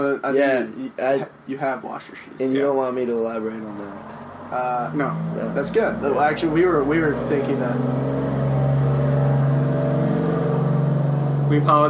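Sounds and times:
speech: 0.0s - 8.4s, 11.5s - 11.8s
large orange truck carrying a dumpster of rocks driving past: 4.0s - 11.8s.

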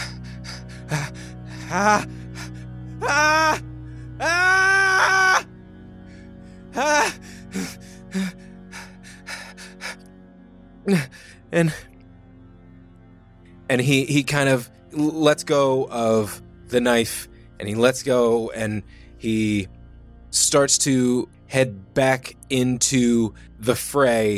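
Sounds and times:
labored breathing from a man after a knife fight: 0.0s - 4.4s, 6.0s - 10.2s, 10.9s - 11.9s
man gasping and groaning: 0.8s - 3.6s, 4.2s - 5.5s, 6.8s - 8.9s, 10.9s - 11.8s
speech: 0.9s - 2.2s, 3.0s - 4.5s, 6.8s - 7.2s, 10.9s - 11.9s, 13.7s - 24.3s.

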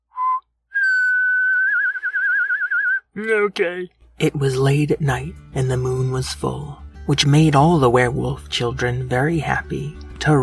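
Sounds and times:
whistling horse sound effect: 0.0s - 3.1s
speech: 3.2s - 10.4s.

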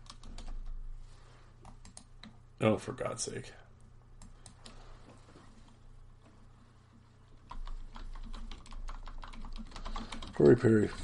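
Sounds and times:
typing on a computer keyboard: 0.0s - 0.8s, 1.6s - 2.4s, 7.4s - 11.0s
speech: 2.6s - 3.6s, 10.4s - 11.0s.

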